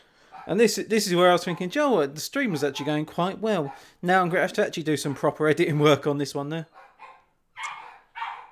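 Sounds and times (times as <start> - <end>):
sharp dog barks: 0.3 - 0.6, 1.4 - 1.8, 2.5 - 3.9, 6.7 - 8.5
speech: 0.4 - 6.8.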